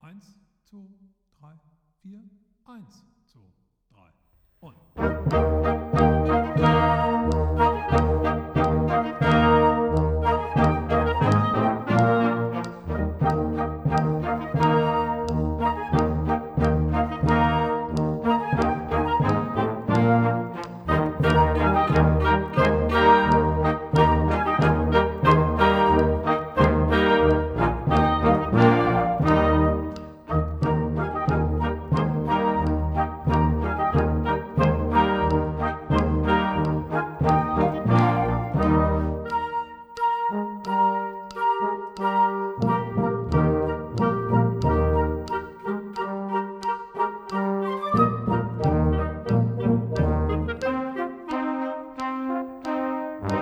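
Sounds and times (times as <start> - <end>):
classical music: 4.6 - 53.3
click: 4.6 - 53.3.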